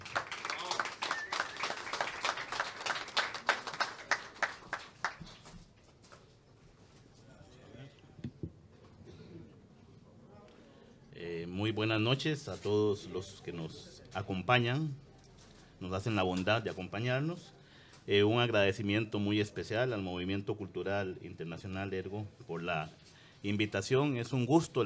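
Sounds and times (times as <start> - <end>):
small audience applauding at a reading: 0.0 - 5.5
speech: 11.6 - 15.0, 15.8 - 24.8.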